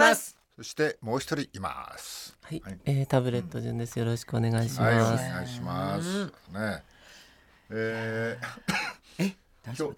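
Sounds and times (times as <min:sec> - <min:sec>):
speech: 0:00.1 - 0:06.9, 0:07.7 - 0:09.9
man coughing suddenly, a dry cough: 0:08.4 - 0:09.4.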